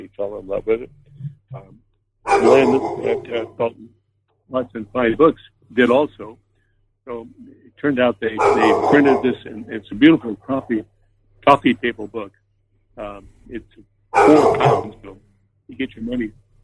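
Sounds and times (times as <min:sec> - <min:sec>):
speech: 0:00.1 - 0:01.8, 0:02.4 - 0:03.9, 0:04.5 - 0:06.4, 0:07.1 - 0:12.4, 0:13.0 - 0:16.4
male dog barking: 0:02.3 - 0:03.7, 0:08.4 - 0:09.6, 0:14.2 - 0:15.0.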